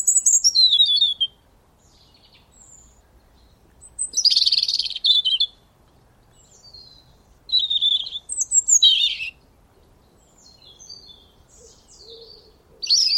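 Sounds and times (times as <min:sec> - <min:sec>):
European robin warbled phrases with sliding whistles: 0:00.0 - 0:13.1
quiet soft bird twittering: 0:00.0 - 0:13.1.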